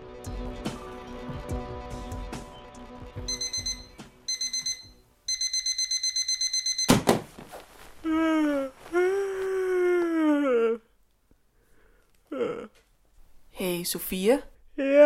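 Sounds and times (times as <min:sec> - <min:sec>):
alarm clock ringing with rapid electronic beeps: 0:03.3 - 0:07.0
groaning sweeping voice-like wail: 0:08.0 - 0:11.0, 0:12.3 - 0:12.8, 0:14.8 - 0:15.0
speech: 0:13.8 - 0:15.0.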